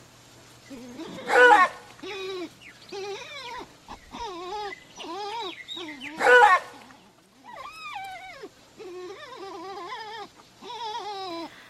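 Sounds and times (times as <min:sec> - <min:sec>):
maned wolf whining: 0:00.7 - 0:11.6
maned wolf barking: 0:00.9 - 0:02.5, 0:03.1 - 0:06.9.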